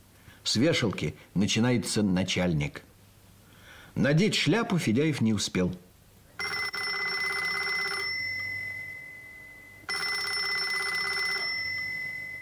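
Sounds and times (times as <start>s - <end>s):
speech: 0.5s - 2.9s, 4.0s - 5.8s
telephone ringing: 6.4s - 12.4s.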